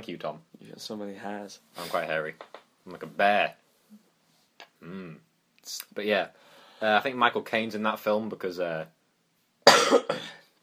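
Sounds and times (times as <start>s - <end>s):
speech: 0.0s - 4.0s, 4.8s - 9.0s, 9.6s - 10.4s
man coughing: 9.6s - 10.5s.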